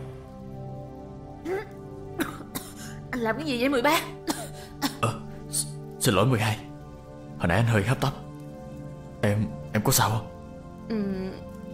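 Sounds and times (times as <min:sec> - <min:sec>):
woman coughing while trying to muffle it: 0:02.2 - 0:02.8, 0:04.2 - 0:05.3
speech: 0:03.2 - 0:04.2, 0:06.0 - 0:06.6, 0:07.4 - 0:08.2, 0:09.2 - 0:10.3, 0:10.9 - 0:11.5.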